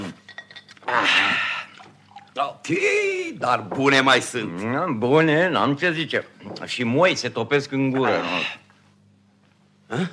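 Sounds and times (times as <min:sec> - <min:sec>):
glassware clinking: 0:00.2 - 0:00.9
water pouring into a glass or cup: 0:00.8 - 0:02.5
speech: 0:00.9 - 0:01.4, 0:02.4 - 0:08.6, 0:09.9 - 0:10.1.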